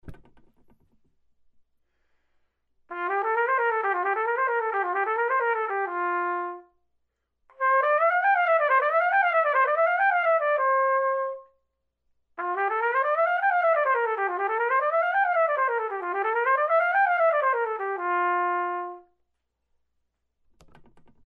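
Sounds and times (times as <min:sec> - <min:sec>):
trumpet playing a scale: 0:02.9 - 0:06.7, 0:07.5 - 0:11.5, 0:12.4 - 0:19.1.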